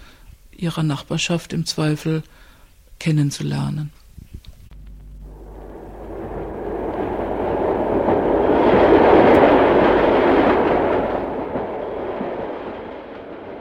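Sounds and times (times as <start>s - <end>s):
speech: 0.6s - 4.0s
train arriving at track 1 in Mannheim Germany rumbling on railway track: 5.3s - 13.5s.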